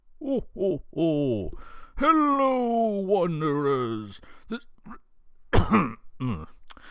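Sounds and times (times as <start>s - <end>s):
speech: 0.3s - 5.0s, 5.7s - 6.5s
person clearing throat: 4.9s - 6.6s
person coughing: 5.5s - 6.6s.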